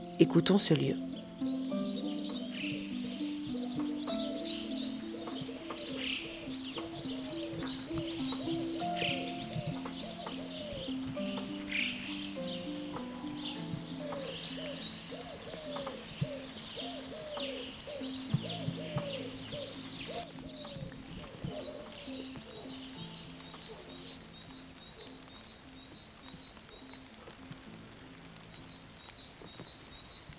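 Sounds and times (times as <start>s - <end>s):
birds chirping and trilling outdoors: 0.0s - 30.3s
soft water drips outdoors: 0.0s - 30.3s
speech: 0.2s - 1.2s
low repeated cooing of birds outdoors: 1.1s - 28.5s.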